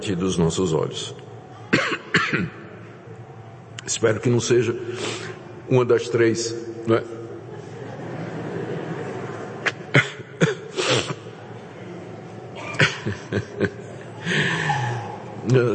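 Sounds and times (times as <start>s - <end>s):
speech: 0.0s - 2.6s, 3.9s - 7.2s
murmur of voices: 0.0s - 15.7s
child coughing: 1.7s - 2.6s, 9.9s - 10.7s, 12.6s - 13.2s
laughter: 7.2s - 15.4s.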